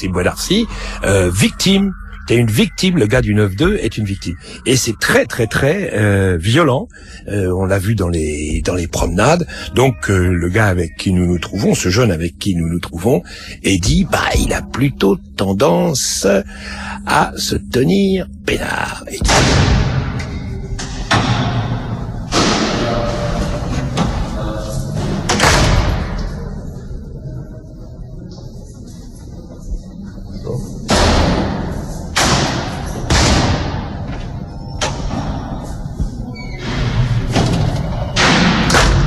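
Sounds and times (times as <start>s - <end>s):
speech: 0.0s - 20.0s
heavy prison doors slamming: 19.2s - 26.2s, 30.9s - 35.6s, 36.5s - 39.0s.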